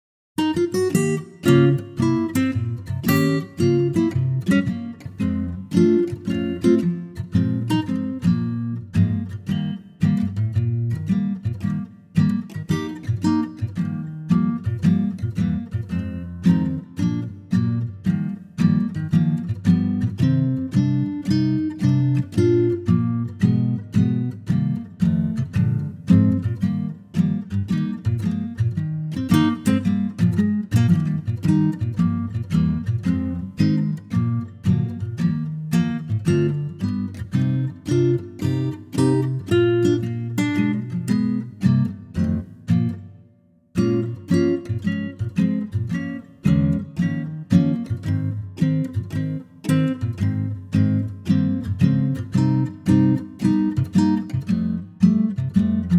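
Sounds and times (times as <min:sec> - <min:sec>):
Eb acoustic guitar: 0:00.4 - 0:55.9.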